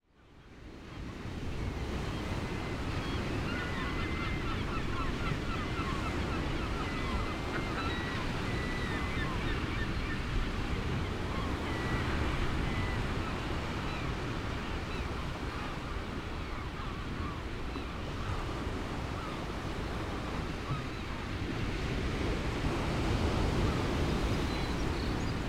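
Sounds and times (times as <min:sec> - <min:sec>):
ocean waves at an island: 0:00.8 - 0:25.4.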